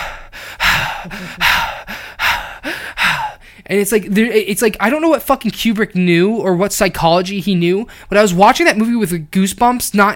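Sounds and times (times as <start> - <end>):
voice imitating a film character's heavy stressed breathing: 0.0 - 3.7
speech: 1.0 - 2.0, 3.7 - 10.1.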